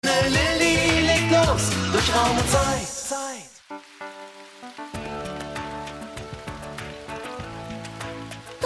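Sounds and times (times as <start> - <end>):
steady rain pattering: 0.0 - 8.6.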